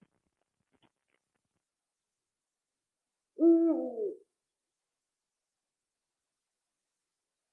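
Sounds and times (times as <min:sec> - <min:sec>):
Eurasian eagle-owl hooting: 0:03.4 - 0:04.2.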